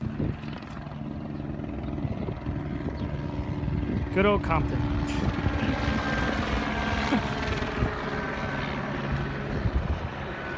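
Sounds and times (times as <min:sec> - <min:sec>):
police helicopter droning overhead: 0:00.0 - 0:10.5
speech: 0:04.2 - 0:06.0.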